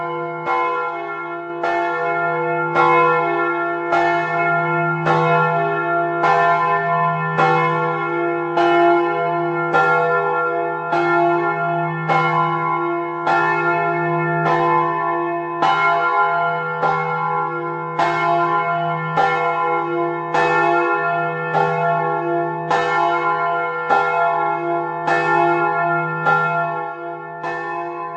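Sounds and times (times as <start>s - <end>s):
large church bell ringing with a deep humming tone: 0.0s - 28.1s.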